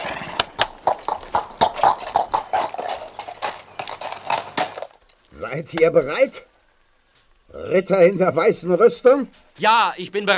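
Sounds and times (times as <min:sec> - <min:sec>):
knight's horse hooves clip-clopping: 0:00.0 - 0:06.5
speech: 0:05.5 - 0:06.5, 0:07.6 - 0:10.3.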